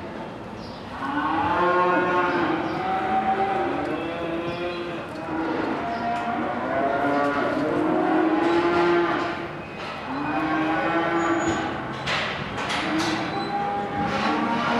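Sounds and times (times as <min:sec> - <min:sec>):
Limousin cattle mooing at livestock market: 0:01.0 - 0:09.5, 0:10.1 - 0:11.8, 0:12.9 - 0:14.7.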